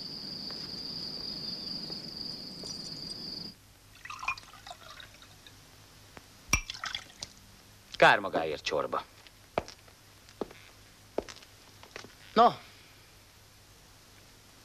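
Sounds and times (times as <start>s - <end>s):
small liquid drips: 3.9s - 5.6s, 6.5s - 7.4s
wine pouring into a glass: 3.9s - 5.6s, 6.6s - 7.3s
sharp glass clink: 4.0s - 5.6s, 6.5s - 7.0s
speech: 8.0s - 9.1s, 12.4s - 12.6s.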